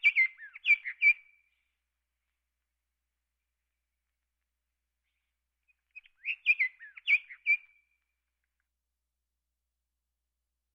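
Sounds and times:
Scott's oriole whistled song: 0.0 - 1.5, 5.8 - 7.9.

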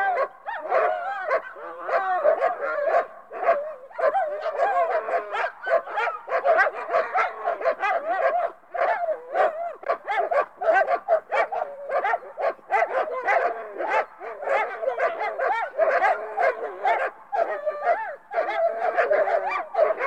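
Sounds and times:
pack of dogs barking and yelping: 0.0 - 20.0.

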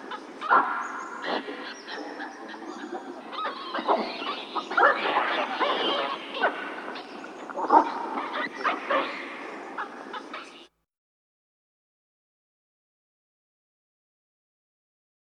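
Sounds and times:
Hamadryas baboon calls: 0.0 - 10.7.

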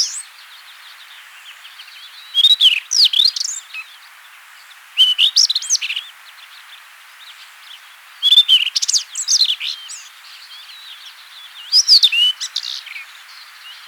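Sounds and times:
Rufous-tailed Scrub Robin singing: 0.0 - 4.0, 5.0 - 6.1, 8.2 - 13.8
background hiss: 0.0 - 13.8.

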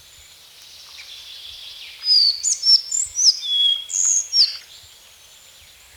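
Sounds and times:
collared flycatcher singing: 2.0 - 4.6.

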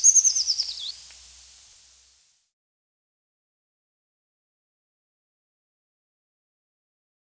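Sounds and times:
Eurasian treecreeper song: 0.0 - 2.2.

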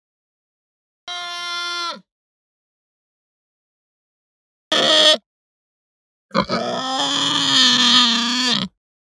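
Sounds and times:
Hampshire pig moaning and grunting: 4.7 - 5.2, 6.3 - 8.8.

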